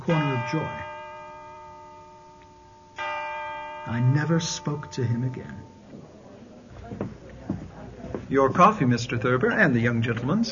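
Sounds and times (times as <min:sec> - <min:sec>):
speech: 0:00.0 - 0:00.9, 0:03.8 - 0:06.1, 0:08.3 - 0:10.5
church bells ringing: 0:00.0 - 0:06.0.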